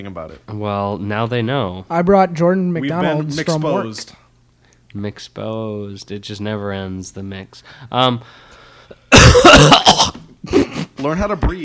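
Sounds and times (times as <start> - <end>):
speech: 0.0 - 4.2, 4.9 - 11.6
person coughing into the microphone: 9.1 - 11.0
throat clearing rasp: 9.1 - 11.0.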